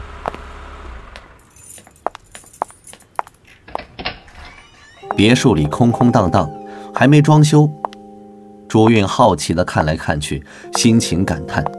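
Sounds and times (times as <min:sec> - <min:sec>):
keys jingling as they are taken out: 0:01.4 - 0:05.8
key unlocking a door: 0:01.4 - 0:07.1
speech: 0:05.2 - 0:07.8, 0:08.7 - 0:11.7.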